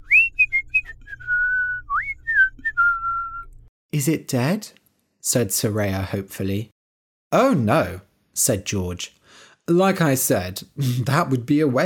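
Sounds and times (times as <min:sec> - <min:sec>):
person whistling a short melodic tune: 0:00.0 - 0:03.7
speech: 0:03.9 - 0:06.7, 0:07.3 - 0:11.8.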